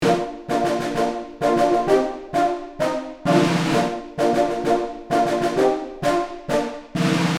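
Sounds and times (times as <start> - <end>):
brass playing a marching loop: 0.0 - 7.3
field drum in a marching loop: 3.3 - 4.7, 6.9 - 7.3.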